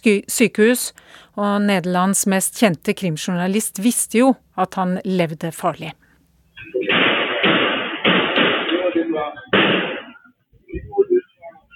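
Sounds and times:
speech: 0:00.0 - 0:06.0
loud gunshots: 0:06.8 - 0:10.2.

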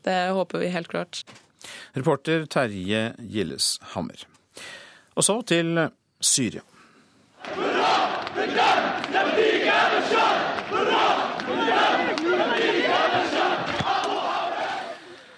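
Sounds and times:
speech: 0:00.0 - 0:06.8
large crowd of supporters cheering and chanting at a political speech in an opera house: 0:07.4 - 0:15.3.

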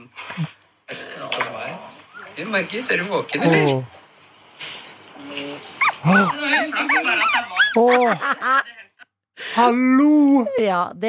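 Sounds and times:
speech: 0:00.1 - 0:00.6, 0:02.4 - 0:04.0, 0:06.0 - 0:06.9, 0:07.7 - 0:08.7, 0:09.6 - 0:11.0
puppies whimpering: 0:05.8 - 0:08.2
laughter: 0:06.0 - 0:08.8.

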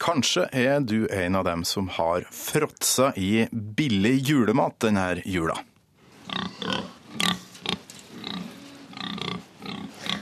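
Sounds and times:
speech: 0:00.0 - 0:05.7, 0:06.3 - 0:07.4
pig grunting and snorting: 0:06.2 - 0:10.1.

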